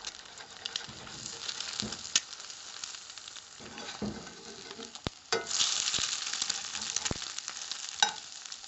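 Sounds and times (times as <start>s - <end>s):
eggs frying in a pan: 0.0s - 8.6s
sharp crackles and pops of frying eggs: 0.0s - 8.6s.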